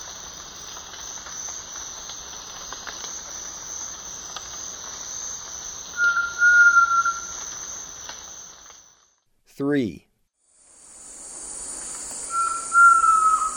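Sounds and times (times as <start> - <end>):
constant high-pitched insect drone: 0.0 - 9.1, 10.5 - 13.5
ochre-striped antpitta whistle in the eastern lowlands of South America: 6.0 - 7.3, 12.3 - 13.5
speech: 9.6 - 10.1.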